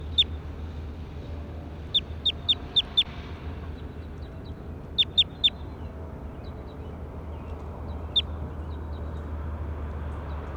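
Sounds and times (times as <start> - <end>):
bird giving short sharp high chirps: 0.0 - 0.3, 1.8 - 3.1, 3.8 - 6.6
steady low hum: 0.0 - 10.5.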